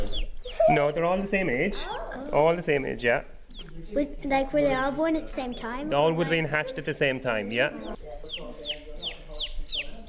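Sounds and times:
low noise: 0.0s - 10.0s
young farm chick peeping: 0.0s - 10.0s
speech: 0.7s - 8.6s.

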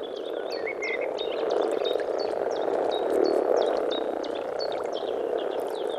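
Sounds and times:
chorus of male common frogs croaking on a bog: 0.0s - 5.9s.

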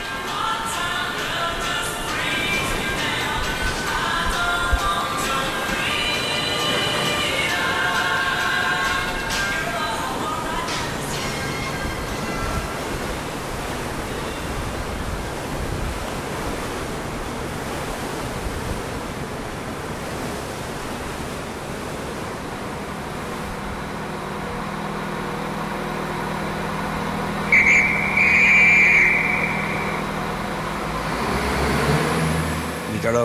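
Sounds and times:
train rumbling along rails: 0.0s - 33.0s
high metallic squealing: 27.5s - 30.1s.

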